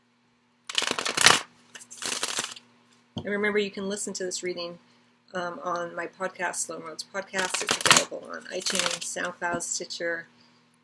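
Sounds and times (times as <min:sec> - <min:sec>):
faint steady hum: 0:00.0 - 0:10.8
tarot cards riffling and sliding as one is drawn: 0:00.7 - 0:02.6
speech: 0:03.2 - 0:10.4.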